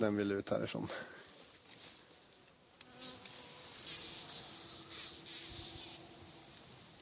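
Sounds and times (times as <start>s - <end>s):
speech: 0.0s - 1.2s
faint outdoor background: 0.0s - 7.0s
irritated bumblebee buzzing on release after tagging: 2.3s - 7.0s.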